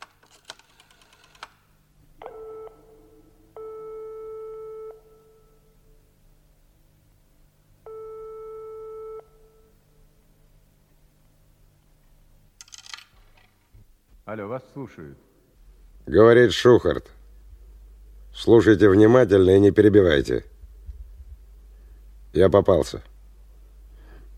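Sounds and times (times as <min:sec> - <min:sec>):
telephone line tones after dialing a number from a payphone: 0:02.2 - 0:06.0, 0:07.8 - 0:09.9
coin dropping into a payphone: 0:12.6 - 0:13.5
speech: 0:14.3 - 0:15.3, 0:16.1 - 0:17.2, 0:18.4 - 0:20.5, 0:22.3 - 0:23.1.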